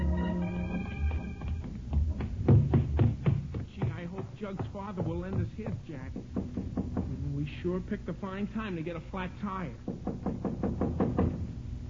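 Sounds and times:
faint room hum: 0.0 - 11.8
knocking on a wooden door: 1.9 - 7.2, 9.9 - 11.5
speech: 4.5 - 10.2.

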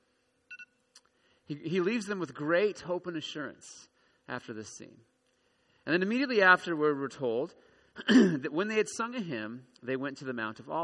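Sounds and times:
quiet hiss: 0.0 - 10.8
mobile phone electronic beeps: 0.5 - 0.7
speech: 1.5 - 5.1, 5.8 - 10.8.

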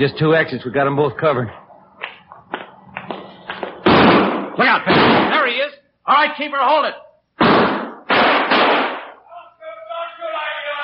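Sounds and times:
speech: 0.0 - 1.6, 4.6 - 7.0
gunshots in a theater: 3.8 - 5.5, 7.4 - 9.2
raised voices: 9.2 - 10.8.

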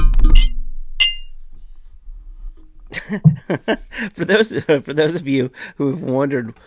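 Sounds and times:
glass striking a microphone pop guard during a toast: 0.3 - 1.3
speech: 3.1 - 6.6.

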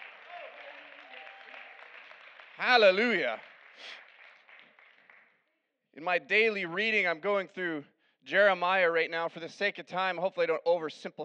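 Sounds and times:
audience clapping in praise: 0.0 - 5.4
speech: 2.6 - 4.0, 6.0 - 11.2.

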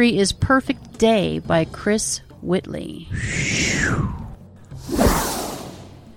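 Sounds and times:
speech: 0.0 - 4.2
whoosh transition sound effect: 3.1 - 6.1.

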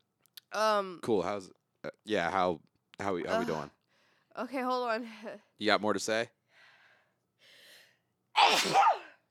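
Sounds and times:
speech: 0.5 - 3.8, 4.4 - 6.4, 8.5 - 9.0
loud sneeze caused by allergies: 8.4 - 9.2.

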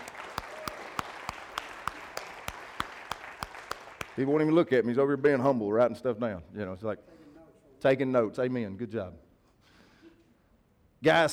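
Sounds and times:
pair of hands clapping sharply in an even rhythm: 0.0 - 4.2
congregation applauding: 0.0 - 4.3
speech: 4.2 - 7.2, 7.8 - 9.2, 11.0 - 11.3.

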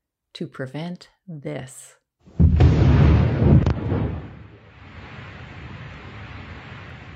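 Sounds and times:
speech: 0.4 - 2.4
Second World War undersea mine exploding underwater: 2.4 - 7.1
sharp crack: 2.4 - 7.1.

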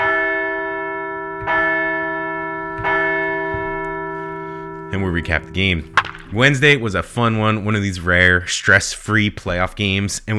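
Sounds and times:
large bell ringing: 0.0 - 7.8
speech: 4.9 - 10.3.

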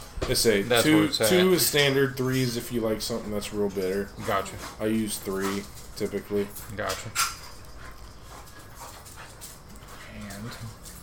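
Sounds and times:
speech: 0.3 - 7.3
attack dog panting: 2.2 - 11.0.

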